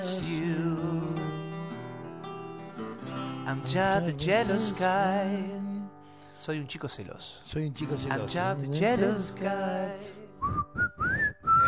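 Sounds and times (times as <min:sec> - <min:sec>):
speech: 0:00.0 - 0:00.8, 0:03.5 - 0:05.6, 0:06.4 - 0:10.7
whistled melody of gliding held notes: 0:10.3 - 0:11.6.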